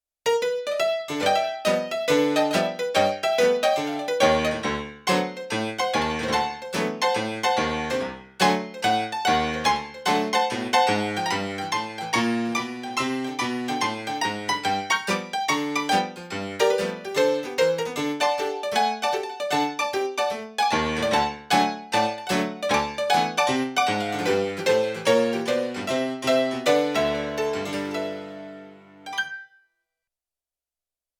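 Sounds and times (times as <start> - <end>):
sampled grand piano: 0.3 - 29.3.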